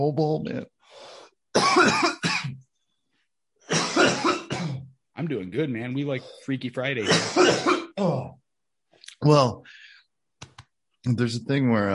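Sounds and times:
speech: 0.0s - 2.6s, 5.2s - 8.4s, 9.2s - 9.8s, 11.0s - 11.9s
harsh raspy coughing after a small hit of smoke: 1.5s - 2.7s, 3.7s - 5.0s, 7.0s - 8.3s.

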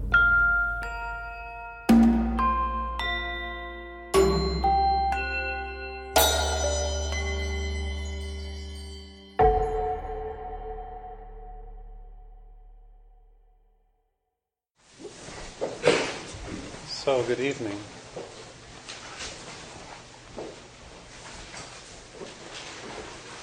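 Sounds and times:
new bell struck and ringing: 0.1s - 11.6s
speech: 17.1s - 17.9s.

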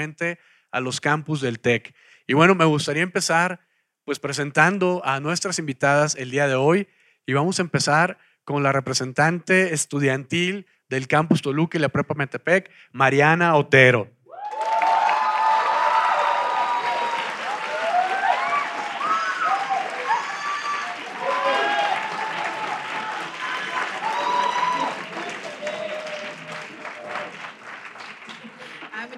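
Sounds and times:
speech: 0.0s - 14.2s
large audience clapping at a student event on a university campus in Toluca: 14.4s - 29.1s.

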